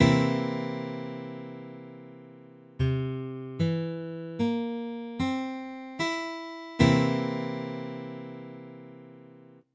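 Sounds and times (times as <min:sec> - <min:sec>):
C7 guitar chords: 0:00.0 - 0:09.6.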